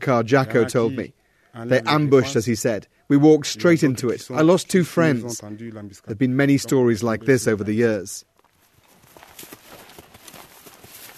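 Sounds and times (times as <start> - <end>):
faint hiss: 0.0 - 8.3
speech: 0.0 - 8.3
hooves of a ranger patrol horse clip-clopping at a walk: 8.4 - 11.1.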